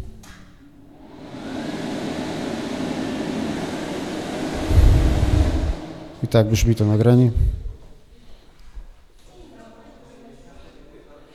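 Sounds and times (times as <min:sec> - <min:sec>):
hair dryer switched on in a bathroom: 0:01.0 - 0:07.0
speech: 0:06.3 - 0:07.6.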